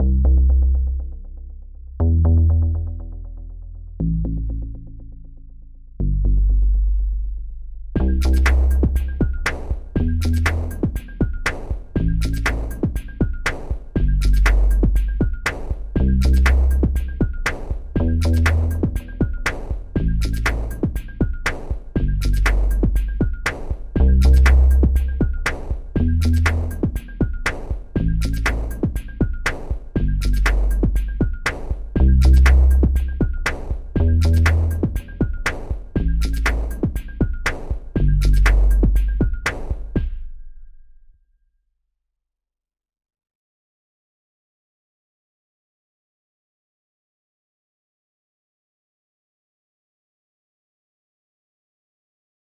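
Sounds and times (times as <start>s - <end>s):
bass: 0.0s - 41.1s
drums: 8.0s - 40.4s.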